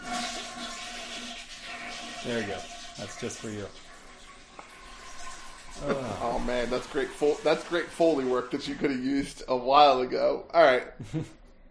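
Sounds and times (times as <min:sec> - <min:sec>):
toilet flushing: 0:00.0 - 0:10.0
speech: 0:02.2 - 0:03.9, 0:05.8 - 0:11.4.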